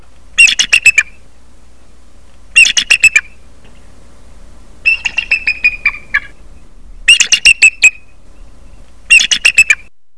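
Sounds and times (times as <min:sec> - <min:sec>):
bald eagle: 0:02.6 - 0:03.9, 0:04.8 - 0:09.9.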